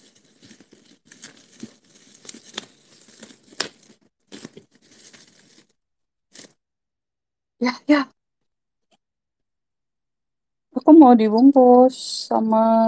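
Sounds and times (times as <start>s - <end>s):
packing tape tearing while wrapping a parcel: 0.0s - 5.7s, 6.3s - 6.6s
crinkling plastic: 0.0s - 6.6s
speech: 7.6s - 8.1s, 11.0s - 12.8s.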